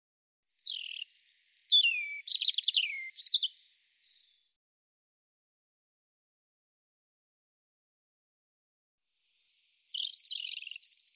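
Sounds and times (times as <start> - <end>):
European robin song: 0.4 - 4.4, 9.2 - 11.1.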